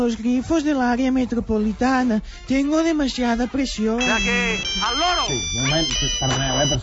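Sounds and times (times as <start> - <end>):
speech: 0.0 - 6.8
loud mobile phone ringtone with voice-like melody: 4.0 - 6.8.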